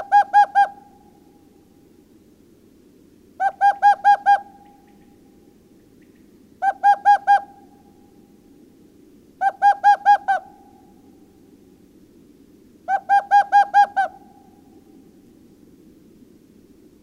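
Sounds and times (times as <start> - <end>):
owl hooting: 0.0 - 1.5, 3.4 - 5.3, 6.0 - 8.4, 9.4 - 11.3, 12.8 - 15.1.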